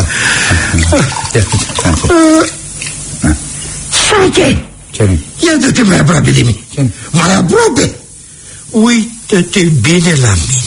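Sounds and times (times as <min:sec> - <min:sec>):
vocal sounds with a short tonal cry: 0:00.0 - 0:03.6
water splashing and pouring as water is sprinkled on a person: 0:00.7 - 0:02.3
speech: 0:00.9 - 0:02.6, 0:04.3 - 0:08.0, 0:08.7 - 0:10.6.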